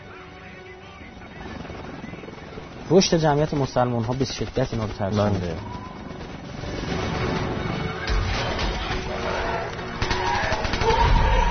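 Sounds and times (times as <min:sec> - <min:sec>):
speech: 0:02.9 - 0:05.9
gunfire from soldiers shooting: 0:03.4 - 0:11.4
chaotic crowd commotion outdoors: 0:08.0 - 0:11.4.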